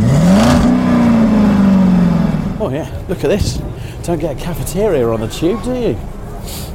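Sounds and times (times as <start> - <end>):
river boat engine revving as the boat leaves a jetty: 0.0 - 2.6
speech: 2.7 - 6.7.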